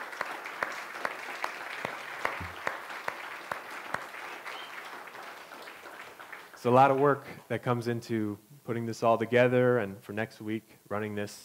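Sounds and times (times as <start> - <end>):
crowd clapping: 0.0 - 7.3
speech: 6.6 - 11.4.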